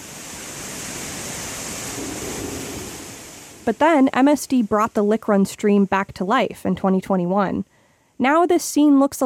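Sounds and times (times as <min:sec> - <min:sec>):
sewage water gushing out of overflow gates: 0:00.0 - 0:04.8
speech: 0:03.7 - 0:09.2.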